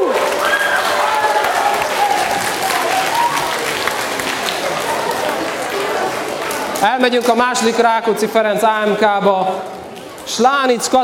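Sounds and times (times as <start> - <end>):
large audience applauding a primary school team: 0.0 - 7.4
faint voices and cheers: 0.0 - 11.0
speech: 6.8 - 9.7, 10.3 - 11.0.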